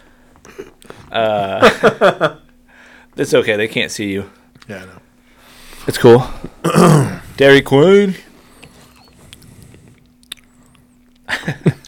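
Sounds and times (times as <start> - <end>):
speech: 0.4 - 2.4, 3.2 - 5.0, 5.8 - 8.3, 11.4 - 11.7
laughter: 1.2 - 2.4, 11.3 - 11.8
wet chewing against the microphone: 8.5 - 11.3.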